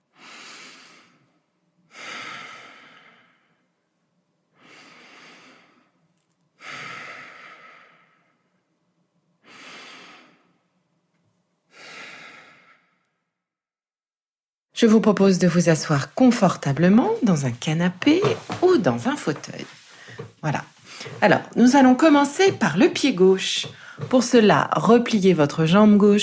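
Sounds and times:
slow deep breaths in a guided relaxation session: 0.0 - 3.8, 4.5 - 6.0, 6.6 - 8.7, 9.4 - 10.7, 11.7 - 13.5, 19.7 - 21.2, 23.7 - 24.1
speech: 14.8 - 19.8, 20.4 - 26.2.

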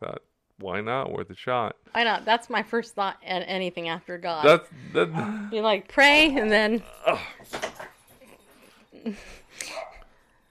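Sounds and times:
speech: 0.0 - 7.4, 9.0 - 9.7
laughter: 4.7 - 5.4
dog barking: 9.6 - 10.1.

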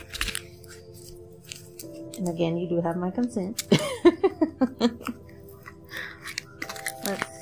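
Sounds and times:
cards being shuffled: 0.0 - 2.4, 5.0 - 7.4
speech: 2.2 - 5.2.

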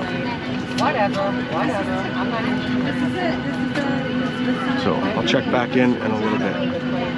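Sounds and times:
indistinct voices murmuring faintly: 0.0 - 7.1
passenger airplane cabin drone during flight: 0.0 - 7.1
speech: 0.8 - 7.1.

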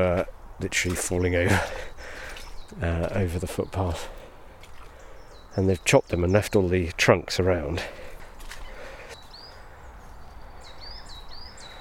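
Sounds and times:
speech: 0.0 - 4.2, 5.6 - 8.1
coal tit singing in mixed woodland of conifers and deciduous trees: 0.0 - 11.8.

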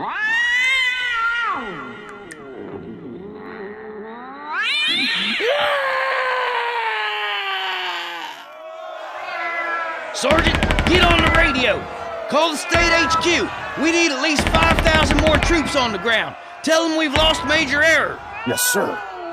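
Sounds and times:
several cats yowling and screeching: 0.0 - 2.5, 4.4 - 8.4, 9.0 - 10.2
speech: 10.2 - 19.1.

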